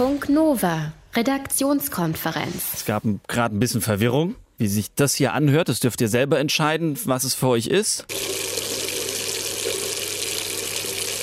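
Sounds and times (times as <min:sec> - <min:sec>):
speech: 0:00.0 - 0:08.7
water running from a tap: 0:08.1 - 0:11.2.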